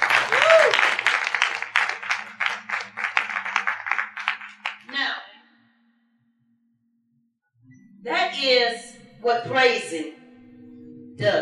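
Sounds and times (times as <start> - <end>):
roomful of people applauding: 0.0 - 5.0
speech: 8.4 - 10.2, 11.2 - 11.3.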